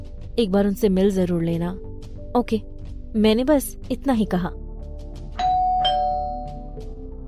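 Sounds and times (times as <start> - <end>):
speech: 0.4 - 4.6
doorbell two-tone chime: 5.4 - 6.8.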